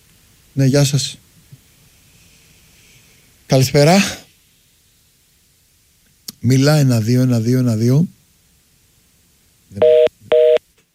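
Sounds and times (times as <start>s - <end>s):
speech: 0.6s - 1.2s, 3.5s - 4.2s, 6.4s - 8.2s
phone line tone beeps after a dropped call: 9.8s - 10.6s.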